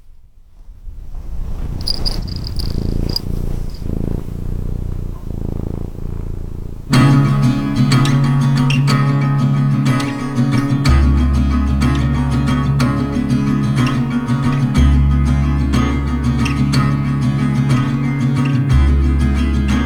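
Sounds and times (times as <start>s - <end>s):
cat purring: 0.6s - 19.8s
loud music with sustained tones: 6.9s - 19.8s.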